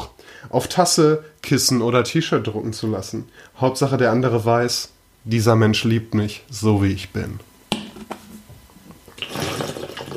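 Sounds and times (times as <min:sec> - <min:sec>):
speech: 0:00.4 - 0:07.5
clicks and gulps from a water bottle: 0:09.1 - 0:10.1.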